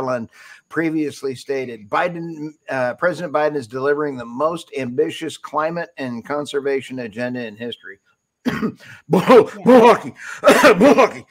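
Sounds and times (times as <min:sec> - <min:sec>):
speech: 0:00.0 - 0:11.2
throat clearing: 0:08.4 - 0:09.6
person coughing: 0:08.5 - 0:09.8.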